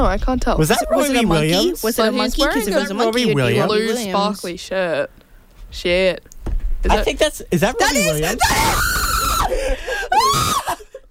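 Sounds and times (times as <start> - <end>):
speech: 0.0 - 8.9
laughter: 0.7 - 1.6, 7.9 - 11.0
crowd screaming at a soccer match in New Jersey: 8.0 - 10.8.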